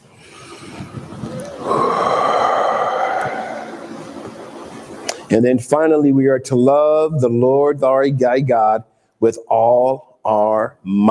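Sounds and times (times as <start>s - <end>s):
deep breath: 0.1s - 5.0s
speech: 5.3s - 11.0s.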